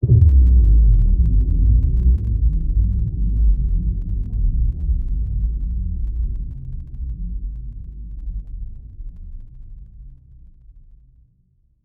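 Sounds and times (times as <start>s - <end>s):
low impact: 0.0s - 6.5s.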